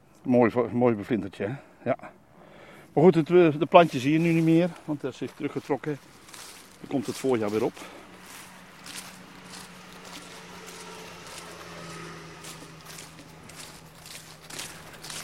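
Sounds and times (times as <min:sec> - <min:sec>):
speech: 0:00.2 - 0:02.2, 0:02.9 - 0:06.1, 0:06.8 - 0:08.0
footsteps walking outdoors with crunchy scuffs: 0:03.0 - 0:15.2
constant low hum: 0:07.9 - 0:15.2.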